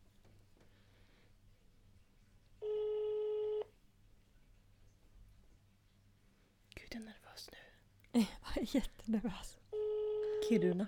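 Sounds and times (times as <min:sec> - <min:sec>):
telephone ringback tone on outgoing call: 0:02.6 - 0:03.7, 0:09.8 - 0:10.8
speech: 0:07.0 - 0:09.6, 0:10.5 - 0:10.8.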